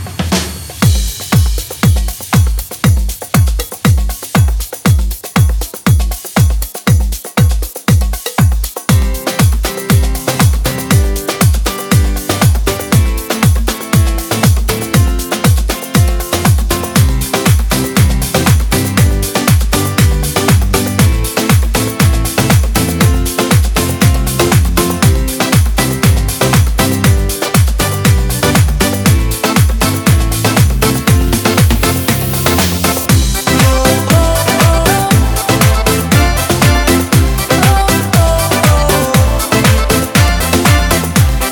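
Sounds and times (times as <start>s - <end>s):
Latin dance music for Zumba: 0.0s - 41.5s.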